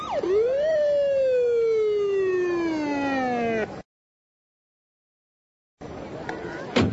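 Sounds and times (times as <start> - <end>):
loud police siren wailing: 0.0 - 3.8.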